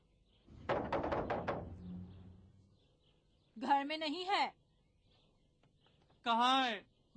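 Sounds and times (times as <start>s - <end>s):
creditor knocking on a house door: 0.5s - 2.3s
speech: 3.6s - 4.6s, 6.2s - 7.1s.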